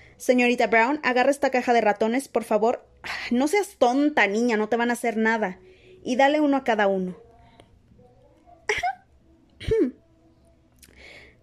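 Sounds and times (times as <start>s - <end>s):
speech: 0.2s - 7.2s
female teacher giving an affected little cough in a classroom: 9.6s - 10.0s.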